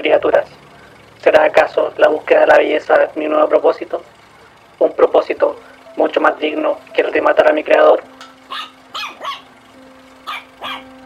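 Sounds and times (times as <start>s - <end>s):
faint steady electrical hum: 0.0s - 11.0s
speech: 1.3s - 4.2s, 4.8s - 8.7s
small dog barking: 8.5s - 9.5s, 10.2s - 10.9s.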